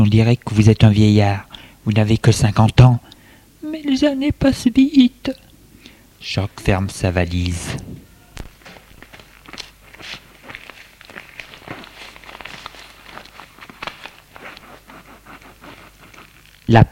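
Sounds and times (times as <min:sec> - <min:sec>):
speech: 0:00.0 - 0:03.1, 0:03.7 - 0:05.5, 0:06.2 - 0:08.0, 0:16.7 - 0:16.8
footsteps of two people leaving a bedroom: 0:07.6 - 0:16.6.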